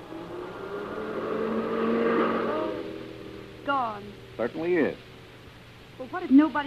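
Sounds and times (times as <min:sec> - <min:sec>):
car driving past: 0:00.0 - 0:05.0
speech: 0:04.0 - 0:05.1, 0:06.0 - 0:06.6.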